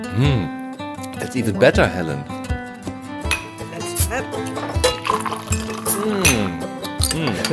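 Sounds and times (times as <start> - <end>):
speech: 0.1 - 0.6, 1.2 - 2.3, 5.5 - 7.5
soft clinks of glassware: 3.3 - 3.7, 4.4 - 7.5
yellow drink poured into a glass for tasting: 4.4 - 6.6.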